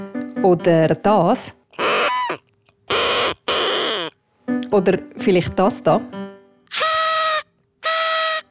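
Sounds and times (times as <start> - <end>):
speech: 0.4 - 1.6, 4.8 - 6.2
party horn noisemaker blasts from a table bomb party cracker: 1.8 - 4.1, 6.7 - 8.4
wobbling squeaky toy noisemaker tooting: 1.8 - 4.2, 6.7 - 8.4.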